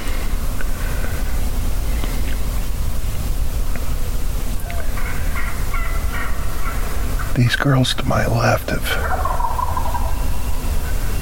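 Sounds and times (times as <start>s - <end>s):
steady broadband noise: 0.0s - 11.1s
wild turkey gobbler gobbling on the ground near hens: 4.6s - 7.4s, 8.8s - 10.4s
speech: 7.4s - 9.2s.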